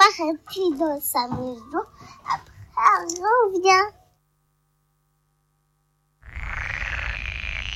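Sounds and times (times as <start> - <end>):
speech: 0.2 - 4.0
frog croaking: 6.2 - 7.7.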